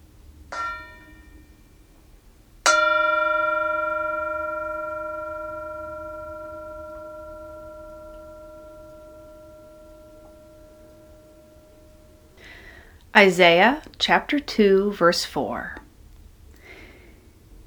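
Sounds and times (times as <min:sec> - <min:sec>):
mindfulness bell ringing: 0:00.5 - 0:01.6, 0:02.7 - 0:12.4
speech: 0:13.2 - 0:15.8.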